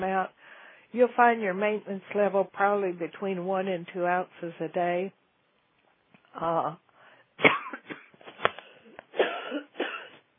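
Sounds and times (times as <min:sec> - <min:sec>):
speech: 0:00.1 - 0:05.2, 0:06.3 - 0:06.8
dry tickly cough: 0:07.4 - 0:10.3.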